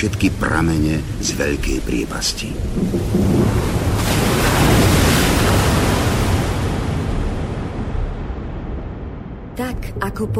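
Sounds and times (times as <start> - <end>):
speech: 0.0 - 3.6, 10.0 - 10.3
rushing churning flood water: 0.0 - 8.3
strong wind: 2.5 - 9.6.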